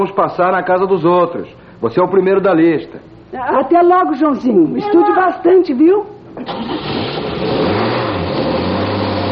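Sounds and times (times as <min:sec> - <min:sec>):
speech: 0:00.0 - 0:06.8
bus engine revving as it pulls off: 0:06.4 - 0:09.3
road noise: 0:06.4 - 0:09.3.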